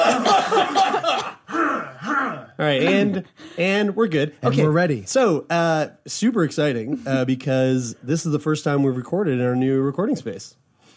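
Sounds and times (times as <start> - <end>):
group of people coughing together on cue: 0.0 - 1.9
people clearing throats: 0.0 - 2.6
speech: 2.6 - 10.6.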